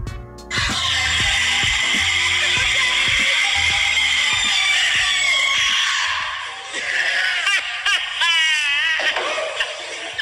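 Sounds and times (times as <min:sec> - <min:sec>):
steady thumping beat: 0:00.0 - 0:05.8
laughter: 0:00.5 - 0:10.2
woman screaming during gym lift: 0:00.5 - 0:10.2.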